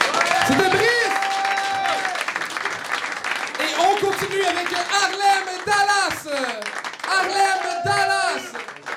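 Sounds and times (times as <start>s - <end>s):
cheering voices: 0.0s - 2.4s, 7.0s - 8.9s
crowd applauding with dense crackling clapping: 0.0s - 8.9s.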